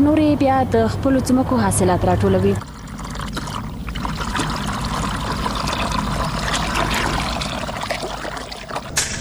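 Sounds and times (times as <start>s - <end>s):
speech: 0.0s - 2.8s
water flowing onto an agricultural field during irrigation: 1.6s - 9.0s.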